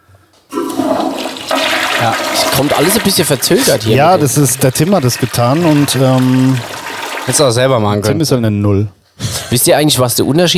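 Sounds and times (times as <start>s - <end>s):
toilet flush of swirling water: 0.5s - 8.0s
speech: 2.0s - 10.5s.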